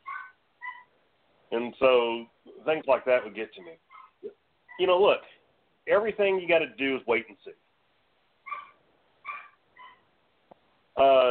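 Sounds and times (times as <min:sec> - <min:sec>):
dog whimpering yelps: 0:00.0 - 0:00.9, 0:03.9 - 0:04.9, 0:08.5 - 0:10.1
speech: 0:01.5 - 0:07.6, 0:11.0 - 0:11.3.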